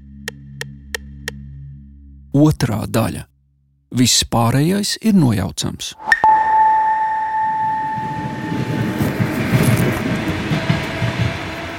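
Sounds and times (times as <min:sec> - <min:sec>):
speech: 0:02.3 - 0:03.3, 0:03.9 - 0:06.2
steady high tone: 0:06.0 - 0:09.7
train wheels clattering on railway tracks: 0:08.5 - 0:11.7.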